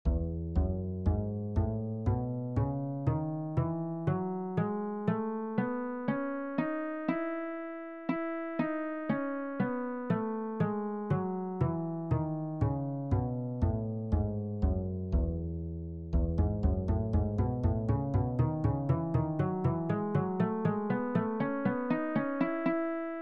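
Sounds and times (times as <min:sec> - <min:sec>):
E major two-octave scale on bass: 0:00.0 - 0:23.1.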